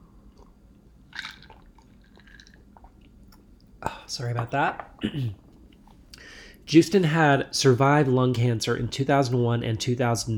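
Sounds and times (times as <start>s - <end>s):
person sipping and swallowing water: 0.2s - 6.3s
speech: 4.1s - 5.4s, 6.7s - 10.3s.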